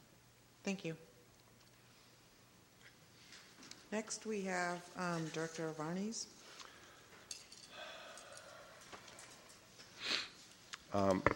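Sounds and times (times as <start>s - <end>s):
speech: 0.6s - 1.1s, 3.9s - 6.4s, 10.9s - 11.3s
person blowing nose during an allergy attack: 10.0s - 10.4s.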